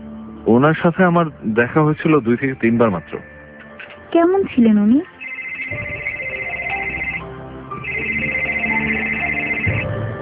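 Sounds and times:
speech: 0:00.4 - 0:03.3, 0:04.1 - 0:05.1
phone ringtone with bright melodic electronic tone: 0:05.1 - 0:10.1.

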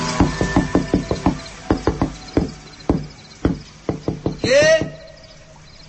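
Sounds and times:
knocking on a wooden door at night: 0:00.2 - 0:05.1.

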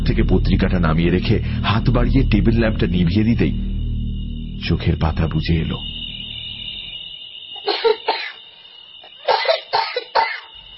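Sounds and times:
speech: 0:00.1 - 0:03.7, 0:04.6 - 0:05.9
person coughing in a bedroom at night: 0:07.6 - 0:08.4, 0:09.2 - 0:10.5.

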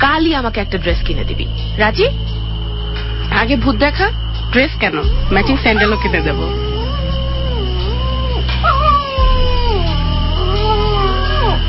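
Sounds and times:
speech: 0:00.2 - 0:02.3, 0:03.3 - 0:06.7
dog howling strangely at night: 0:05.2 - 0:11.6.

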